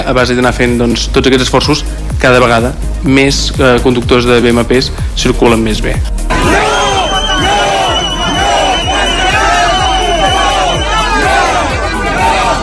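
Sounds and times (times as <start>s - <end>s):
speech: 0.0s - 6.7s
far-right demonstrators and antifascist groups shouting and chanting at a street clash in central Olot: 6.3s - 12.6s.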